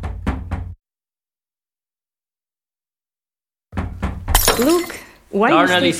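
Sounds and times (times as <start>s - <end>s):
knocking on a door: 0.0s - 0.8s, 3.7s - 4.4s
speech: 4.6s - 5.9s.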